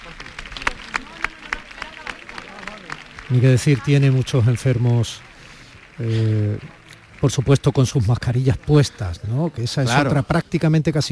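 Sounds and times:
sharp fairly regular claps: 0.0s - 8.2s
murmuring voices: 0.0s - 10.7s
crowd applauding outdoors at a religious procession: 0.0s - 10.8s
speech: 3.3s - 5.3s, 6.0s - 11.1s.

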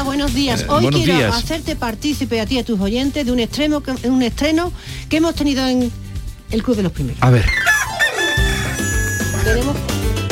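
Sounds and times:
speech: 0.0s - 7.6s, 9.4s - 9.9s
rhythmic music with a steady beat and bright tones: 0.0s - 10.3s
rooster crowing: 7.6s - 9.6s.

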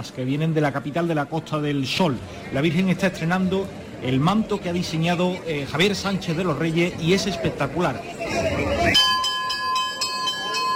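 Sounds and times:
speech: 0.0s - 8.8s
crowd murmur: 0.0s - 10.7s
bell ringing: 8.8s - 10.7s.

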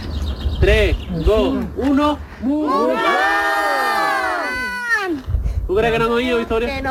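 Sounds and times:
speech: 0.6s - 3.5s, 5.7s - 6.8s
group of children shouting to call animals at an eco-reserve: 2.6s - 5.1s.

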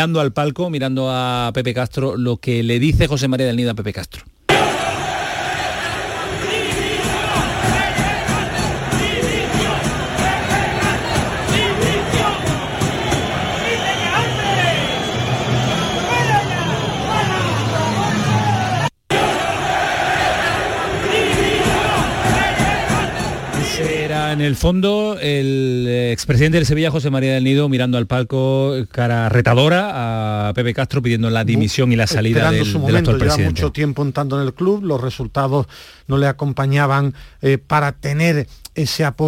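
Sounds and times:
speech: 0.0s - 4.3s, 24.3s - 39.2s
football stadium crowd chanting and roaring after the match: 4.5s - 24.6s.

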